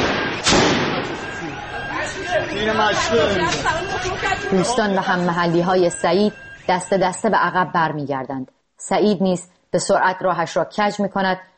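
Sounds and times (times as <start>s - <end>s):
gunshot fired toward protesters: 0.0s - 1.3s
crowd of agitated protesters chattering and calling out: 0.8s - 7.6s
speech: 2.5s - 11.5s.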